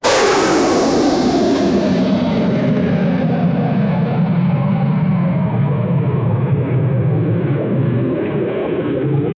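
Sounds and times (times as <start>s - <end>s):
aircraft jet turbine: 0.0s - 9.3s.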